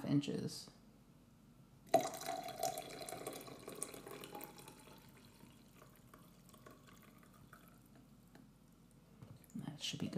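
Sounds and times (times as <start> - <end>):
speech: 0.1 - 0.8
hot water poured into coffee grounds in a container: 1.9 - 8.3.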